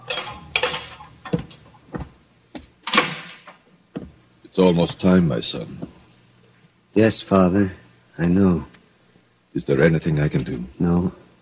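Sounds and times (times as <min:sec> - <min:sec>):
footsteps on a hard floor: 0:01.2 - 0:02.8, 0:03.9 - 0:04.2
speech: 0:04.6 - 0:05.8, 0:07.0 - 0:08.7, 0:09.6 - 0:11.2.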